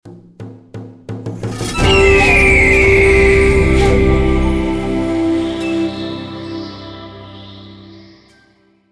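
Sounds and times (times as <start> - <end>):
bonus prize won reveal sound effect: 1.5 - 7.8.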